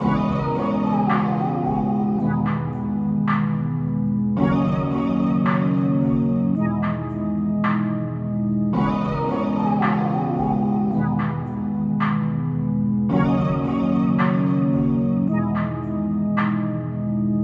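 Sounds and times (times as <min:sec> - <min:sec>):
R&B hip hop melody in D sharp minor at 110 BPM: 0:00.0 - 0:17.4.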